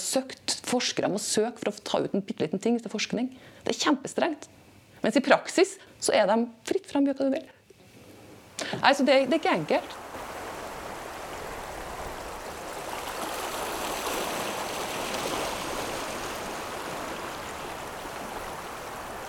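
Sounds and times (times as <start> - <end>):
speech: 0.1 - 7.6, 8.7 - 10.0
rushing water of a powerful tidal maelstrom: 8.7 - 19.2.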